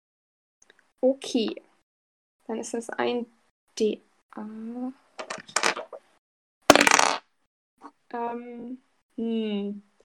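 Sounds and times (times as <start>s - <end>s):
speech: 1.0s - 1.6s, 2.5s - 5.6s, 7.8s - 9.9s
two eight-sided dice rolling on a hard tabletop: 6.7s - 7.2s.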